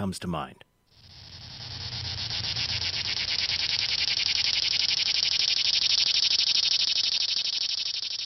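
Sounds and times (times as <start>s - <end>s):
speech: 0.0s - 0.7s
dense chorus of cicadas buzzing: 0.9s - 8.2s.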